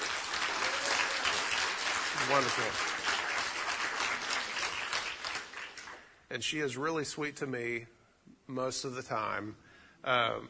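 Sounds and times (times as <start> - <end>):
audience applause: 0.0 - 6.1
speech: 2.2 - 3.0, 6.3 - 10.4.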